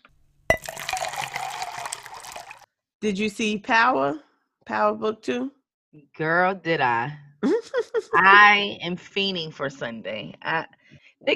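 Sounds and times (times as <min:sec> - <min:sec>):
cups clinking for a shot: 0:00.5 - 0:02.6
drinks poured into a glass: 0:00.5 - 0:02.7
speech: 0:03.0 - 0:11.3.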